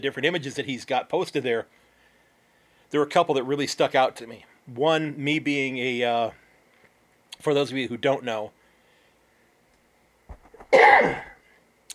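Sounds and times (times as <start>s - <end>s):
speech: 0.0s - 1.8s, 2.9s - 6.4s, 7.4s - 8.6s, 10.7s - 11.3s
person coughing: 10.6s - 11.4s.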